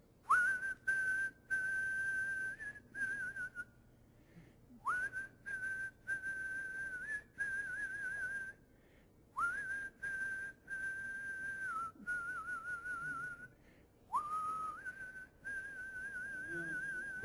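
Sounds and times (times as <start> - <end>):
person whistling a slow worship song melody: 0.2 - 3.8, 4.7 - 8.7, 9.3 - 17.2.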